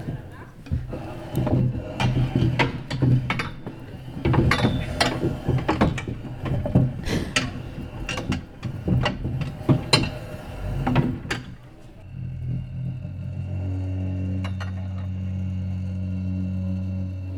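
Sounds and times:
crowded chairs being shifted and shuffled around: 0.0 - 12.1
steady low hum: 0.0 - 17.3.

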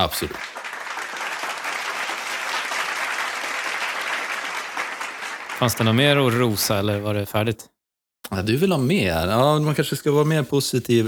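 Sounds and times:
speech: 0.0 - 0.6, 5.6 - 7.7, 8.3 - 11.0
applause from a group: 0.0 - 6.6.

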